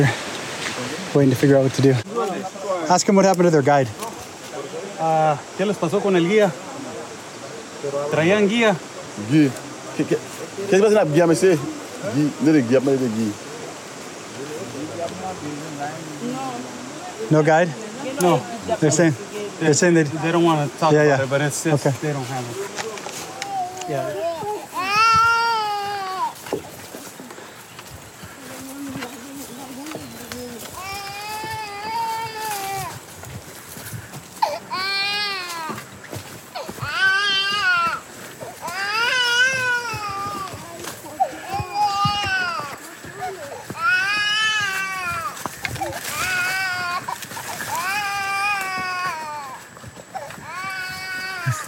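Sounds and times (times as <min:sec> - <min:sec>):
speech: 0:00.0 - 0:00.2, 0:01.2 - 0:02.1, 0:02.9 - 0:04.1, 0:05.0 - 0:06.6, 0:07.8 - 0:13.4, 0:17.3 - 0:22.8, 0:23.9 - 0:24.3
children in the jungle crying: 0:23.3 - 0:26.5, 0:30.5 - 0:35.9, 0:36.5 - 0:51.6.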